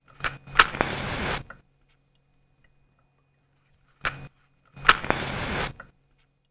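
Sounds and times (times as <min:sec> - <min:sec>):
match striking: 0:00.6 - 0:01.6, 0:04.8 - 0:05.9.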